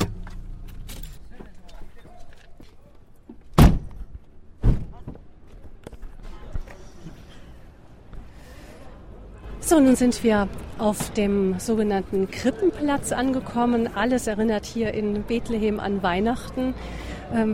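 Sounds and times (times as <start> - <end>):
people getting out of a car: 0.0 - 8.4
heavy car door thuds: 3.6 - 4.0
speech: 9.7 - 17.5.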